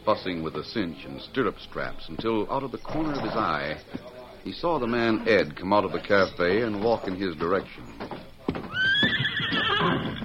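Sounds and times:
speech: 0.0 - 8.9
horse hoof clops: 1.8 - 10.2
horse whinnying at a hitch rack: 2.9 - 3.8, 8.6 - 10.2.

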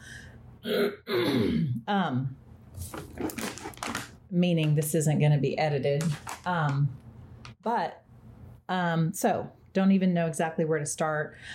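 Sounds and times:
person clearing throat: 0.6 - 1.8
speech: 0.6 - 2.4, 4.3 - 7.0, 7.6 - 8.0, 8.7 - 11.5.

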